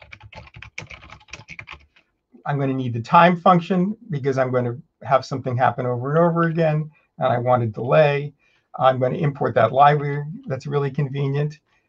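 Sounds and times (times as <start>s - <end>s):
typing on a computer keyboard: 0.0s - 2.1s
speech: 2.4s - 11.6s.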